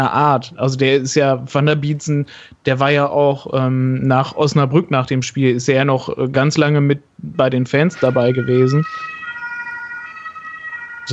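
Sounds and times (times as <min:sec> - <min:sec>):
speech: 0:00.0 - 0:09.2
ambulance siren wailing outside: 0:07.3 - 0:11.1.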